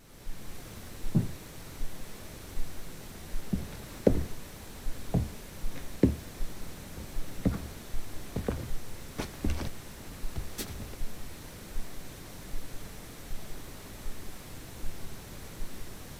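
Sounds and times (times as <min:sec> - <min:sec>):
steady hiss: 0:00.0 - 0:16.1
sharp knocks: 0:01.1 - 0:01.4, 0:03.5 - 0:04.4, 0:05.2 - 0:06.3, 0:07.0 - 0:07.8.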